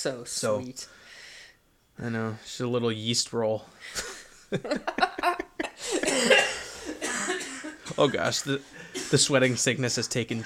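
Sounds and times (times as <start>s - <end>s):
speech: 0.0s - 1.2s, 2.0s - 10.4s
laughter: 4.0s - 6.0s, 6.8s - 9.3s
man coughing off-microphone: 5.6s - 9.5s.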